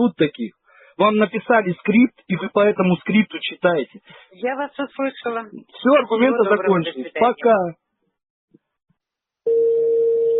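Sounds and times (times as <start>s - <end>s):
speech: 0.0s - 7.8s
telephone ringback tone: 9.5s - 10.3s.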